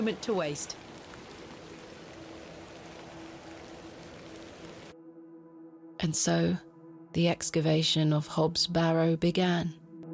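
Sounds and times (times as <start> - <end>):
speech: 0.0 - 0.9, 6.0 - 9.8
steady rain falling: 0.0 - 5.0.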